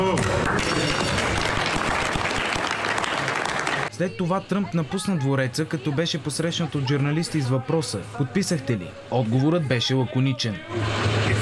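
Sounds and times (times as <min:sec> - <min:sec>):
large crowd applauding after signing ceremony: 0:00.0 - 0:03.9
speech: 0:04.0 - 0:11.4.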